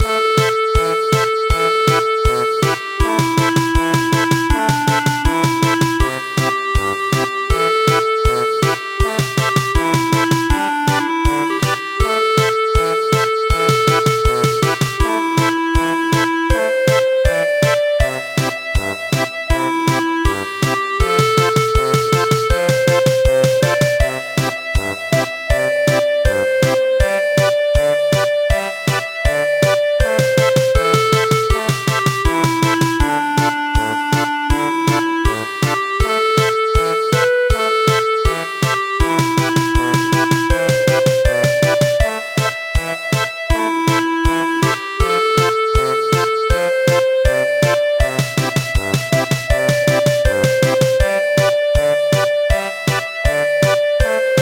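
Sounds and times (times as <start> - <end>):
traditional German polka MIDI music: 0.0 - 54.4.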